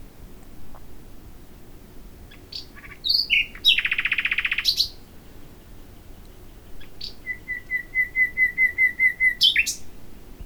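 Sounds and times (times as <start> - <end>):
common nightingale Luscinia megarhynchos song: 2.2 - 10.0.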